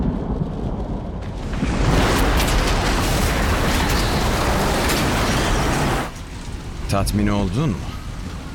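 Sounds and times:
thunder rumbling in a storm: 0:00.0 - 0:08.5
speech: 0:06.9 - 0:07.9.

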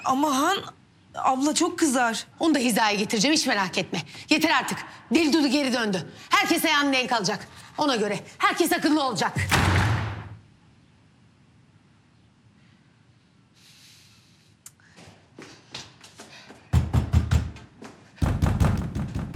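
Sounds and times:
speech: 0:00.0 - 0:09.9
knocking and heavy pounding on a door: 0:16.7 - 0:17.6, 0:18.2 - 0:19.3.

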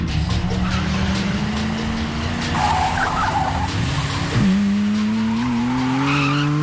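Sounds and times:
car tires screeching: 0:00.0 - 0:06.6
racing car engines roaring on a road: 0:00.0 - 0:06.6.

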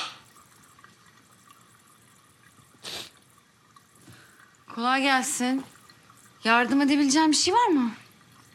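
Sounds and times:
tap water running while beans are washed with soap: 0:00.0 - 0:08.5
speech: 0:04.8 - 0:05.8, 0:06.4 - 0:08.0.

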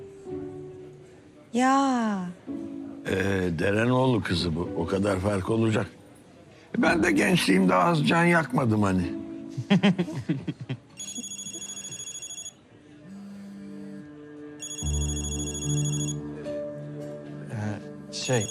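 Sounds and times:
speech: 0:01.5 - 0:06.0, 0:06.7 - 0:10.7, 0:18.3 - 0:18.4
laughter: 0:09.5 - 0:11.9
telephone ringing with an electronic high-pitched ringtone: 0:11.0 - 0:12.6, 0:14.6 - 0:16.2, 0:18.2 - 0:18.4.

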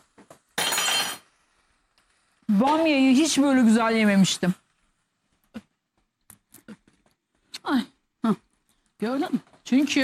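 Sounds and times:
thrown metal spoon landing with a clattering clink: 0:00.6 - 0:01.3
speech: 0:02.6 - 0:04.6, 0:09.0 - 0:10.0.

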